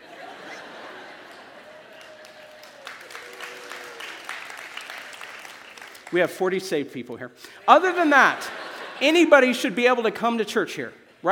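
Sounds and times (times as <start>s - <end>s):
laughter: 0.0s - 3.2s, 7.7s - 9.8s
audience clapping: 1.1s - 6.4s
speech: 6.1s - 11.3s.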